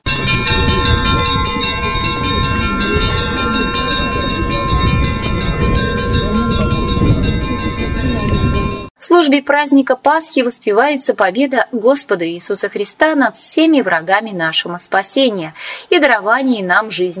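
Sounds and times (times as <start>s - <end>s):
church bells ringing a festive Easter peal: 0.0s - 8.9s
speech: 9.2s - 17.1s.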